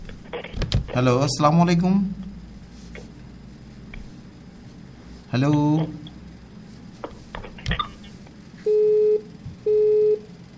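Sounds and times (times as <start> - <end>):
speech: 1.0 - 2.2, 5.3 - 6.1
telephone busy tone after a disconnected call: 8.6 - 10.3.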